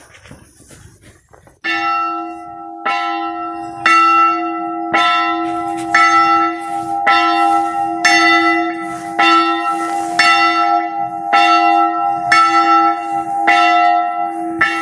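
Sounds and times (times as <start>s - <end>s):
church bell ringing: 1.6s - 14.7s.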